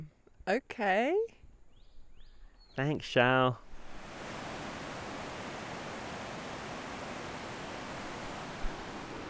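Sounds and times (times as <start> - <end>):
speech: 0.5 - 1.3, 2.8 - 3.6
rushing water of a mountain river: 3.7 - 9.2.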